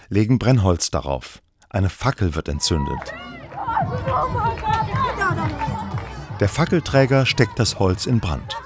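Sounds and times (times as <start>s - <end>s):
speech: 0.1s - 5.6s, 6.4s - 8.6s
crowd of children shouting and cheering: 2.5s - 8.6s.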